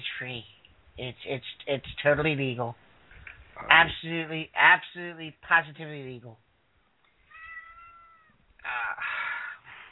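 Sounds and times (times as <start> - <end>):
speech: 0.2 - 2.9, 3.6 - 6.4
cat meowing: 7.2 - 8.4.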